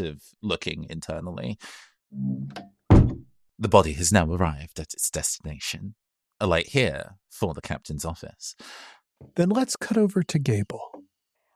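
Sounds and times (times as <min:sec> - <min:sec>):
speech: 0:00.0 - 0:11.0
office door creaking shut: 0:02.4 - 0:03.3.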